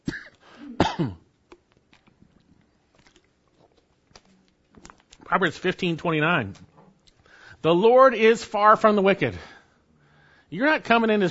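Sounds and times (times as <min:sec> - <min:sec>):
rough throat clearing: 0:00.0 - 0:01.3
sipping and swallowing water: 0:00.3 - 0:05.3
speech: 0:01.0 - 0:01.2, 0:05.3 - 0:06.7, 0:07.6 - 0:09.5, 0:10.5 - 0:11.2.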